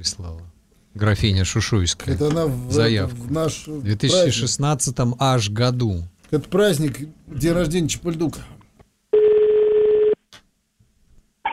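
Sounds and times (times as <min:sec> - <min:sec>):
speech: 0:00.0 - 0:08.6
electronic telephone tone as a number is dialed: 0:09.2 - 0:10.2.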